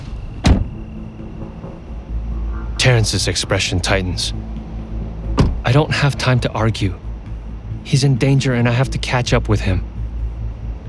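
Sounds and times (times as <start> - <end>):
car door shutting as someone climbs out: 0.0 - 0.8, 5.3 - 5.6
low steady hum: 0.0 - 10.8
speech: 2.9 - 4.5, 5.7 - 7.0, 7.8 - 9.9.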